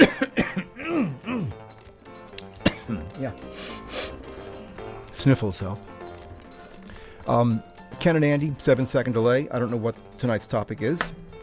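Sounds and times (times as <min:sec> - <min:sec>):
person clearing throat: 0:00.0 - 0:01.6, 0:02.6 - 0:03.9
speech: 0:05.2 - 0:06.0, 0:07.3 - 0:11.2.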